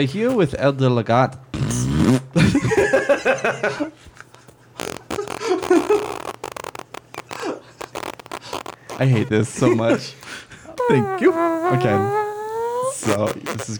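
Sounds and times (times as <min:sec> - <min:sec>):
speech: 0:00.0 - 0:04.0, 0:09.0 - 0:10.2, 0:10.9 - 0:12.2, 0:13.0 - 0:13.7
loud raspy sputtering fart: 0:01.5 - 0:02.2, 0:04.2 - 0:09.4, 0:10.2 - 0:13.7.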